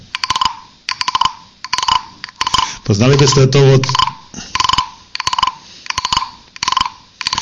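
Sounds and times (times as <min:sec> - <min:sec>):
wooden frog güiro rubbed with rasping croak-like strokes: 0:00.2 - 0:07.4
speech: 0:02.9 - 0:04.5.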